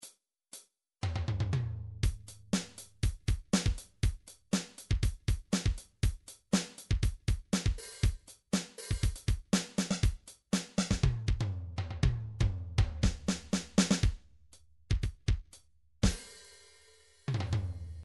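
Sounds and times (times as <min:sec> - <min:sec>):
MIDI funk drums: 0:01.0 - 0:14.2, 0:14.9 - 0:16.5.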